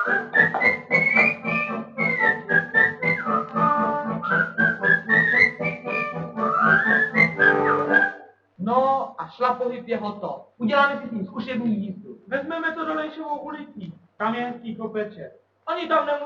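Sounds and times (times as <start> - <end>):
speech: 0.0 - 0.8, 9.4 - 16.2
low musical accompaniment: 0.0 - 8.2
person whistling a lively wavering tune: 0.0 - 8.3.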